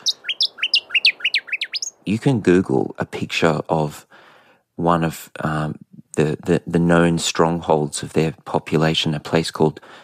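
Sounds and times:
noisy scrub-bird song of rapid sharp chirps: 0:00.0 - 0:02.1
speech: 0:02.1 - 0:04.1, 0:04.8 - 0:10.0.

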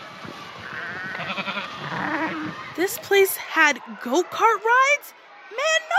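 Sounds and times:
goat bleating at a playground in San Francisco: 0:00.7 - 0:02.5
speech: 0:02.8 - 0:05.8.

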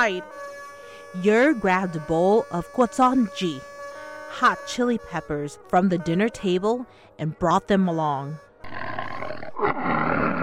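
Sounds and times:
speech: 0:00.0 - 0:00.5, 0:01.1 - 0:03.7, 0:04.3 - 0:09.0
tiger roaring: 0:08.6 - 0:10.4.

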